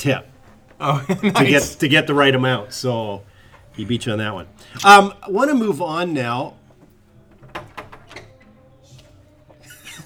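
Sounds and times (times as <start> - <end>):
speech: 0.0 - 6.6
laughter: 0.8 - 2.3
door opening and shutting as someone walks out: 7.2 - 10.0.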